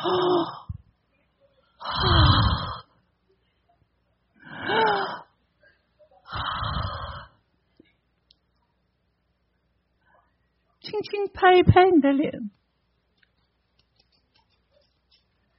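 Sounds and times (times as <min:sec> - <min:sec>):
person yawning during a relaxation warm-up exercise: 0:00.0 - 0:00.8, 0:01.8 - 0:02.8, 0:04.5 - 0:05.3
speech: 0:11.0 - 0:12.6.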